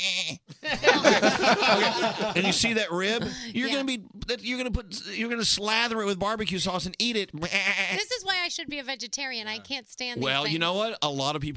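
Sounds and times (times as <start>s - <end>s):
goat bleating: 0.0s - 0.5s, 7.4s - 8.3s
laughter: 0.5s - 3.9s
speech: 1.0s - 11.5s.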